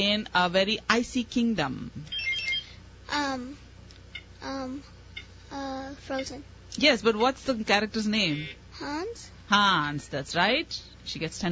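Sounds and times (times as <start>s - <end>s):
speech: 0.0s - 2.2s, 3.1s - 3.6s, 4.4s - 11.4s
quiet noise: 0.0s - 11.4s
quiz buzzer short electronic tone with downward slide: 2.1s - 2.8s.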